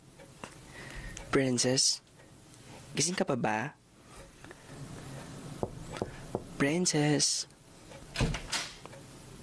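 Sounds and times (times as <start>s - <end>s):
speech: 1.3s - 2.1s, 2.9s - 3.8s, 6.6s - 7.5s
door being opened with latch and panel knocks: 8.1s - 8.8s.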